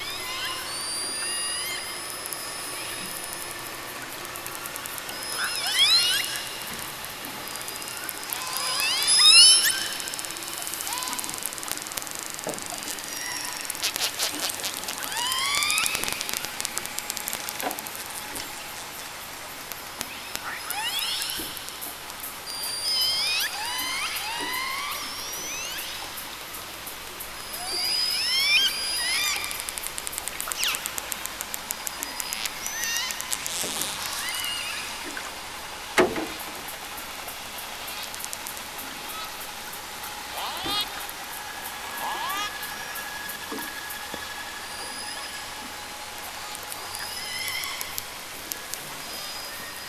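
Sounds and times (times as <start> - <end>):
killer whale: 0.0 - 26.5, 27.4 - 49.8.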